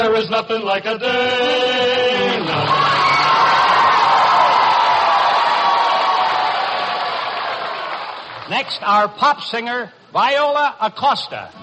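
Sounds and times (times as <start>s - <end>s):
speech: 0.1s - 3.0s, 8.5s - 11.6s
large audience screaming: 2.4s - 8.3s.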